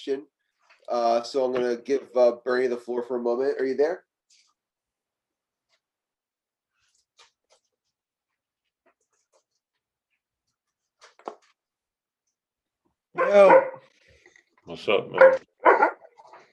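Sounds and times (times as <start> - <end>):
speech: 0.0 - 4.1, 13.2 - 13.9, 14.7 - 15.5
dog barking: 13.2 - 13.9, 15.2 - 16.1.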